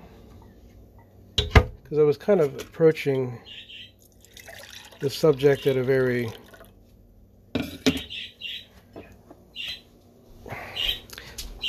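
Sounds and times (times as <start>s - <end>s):
speech: 1.9s - 3.8s, 5.0s - 6.5s
eleven-year-old pet parakeet chirping and squawking: 3.4s - 4.0s, 7.8s - 8.8s, 9.5s - 9.9s, 10.7s - 11.6s.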